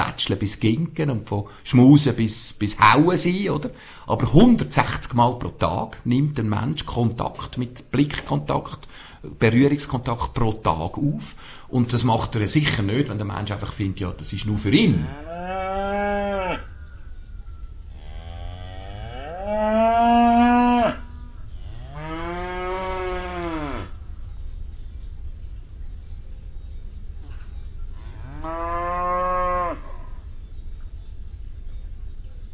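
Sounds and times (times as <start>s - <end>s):
speech: 0.2s - 15.6s
steady low rumble: 0.2s - 32.5s
cow mooing in long drawn-out calls: 15.0s - 16.7s, 18.0s - 24.0s, 28.0s - 30.2s.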